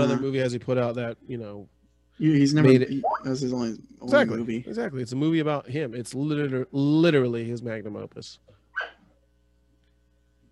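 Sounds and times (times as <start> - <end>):
speech: 0.0 - 9.0
faint steady hum: 0.0 - 10.4
dog barking: 8.8 - 9.0.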